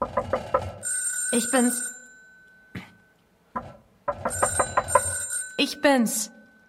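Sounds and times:
doorbell ringing: 0:00.8 - 0:03.3, 0:04.1 - 0:06.6
speech: 0:01.3 - 0:01.9, 0:05.6 - 0:06.4.

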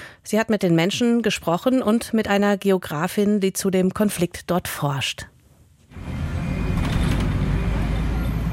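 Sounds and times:
speech: 0:00.3 - 0:05.3
bus engine and road noise on a country road heard from inside: 0:05.9 - 0:08.5.

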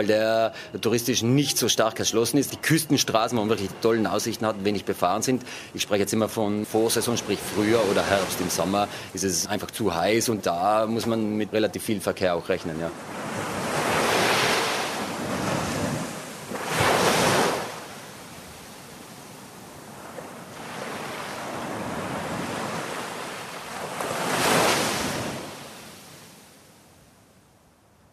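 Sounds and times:
speech: 0:00.0 - 0:13.5
wind on the coast of Sardinia: 0:00.0 - 0:28.1
Mediterranean Sea waves washing onto the coast of Sardinia, Italy: 0:01.6 - 0:27.4
steady hiss of Mediterranean surf: 0:06.6 - 0:10.0, 0:12.8 - 0:26.5.

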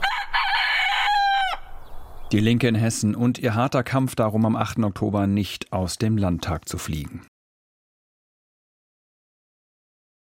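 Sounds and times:
chicken calling at a disused railway track in the Odenwald, Germany: 0:00.0 - 0:01.8
speech: 0:02.3 - 0:07.3.

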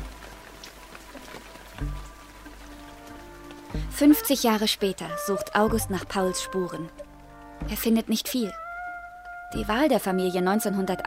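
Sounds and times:
rain drumming on a surface: 0:00.0 - 0:11.0
speech: 0:03.8 - 0:07.0, 0:07.6 - 0:08.6, 0:09.5 - 0:11.0.

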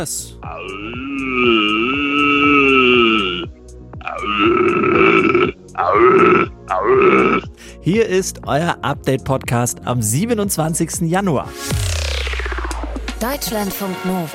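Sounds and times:
speech: 0:00.0 - 0:02.0, 0:07.9 - 0:11.9, 0:13.2 - 0:14.3
man imitating a red deer stag's roar: 0:00.4 - 0:07.6.

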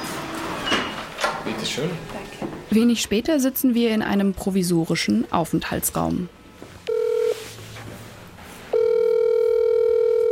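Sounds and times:
speech: 0:01.5 - 0:06.4
telephone ringback tone as a phone call is placed: 0:06.9 - 0:07.6, 0:08.7 - 0:10.2.

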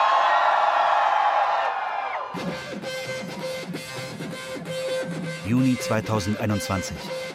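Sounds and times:
pride parade crowd cheering and whooping: 0:00.0 - 0:02.9
rhythmic pulsing beat: 0:02.4 - 0:07.3
speech: 0:05.5 - 0:07.3.

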